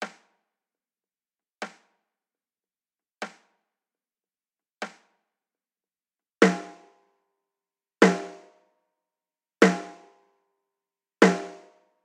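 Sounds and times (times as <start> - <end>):
snare drum: 0.0 - 0.3, 1.6 - 2.0, 3.2 - 3.6, 4.8 - 5.1, 6.4 - 6.9, 8.0 - 8.4, 9.6 - 10.0, 11.2 - 11.7.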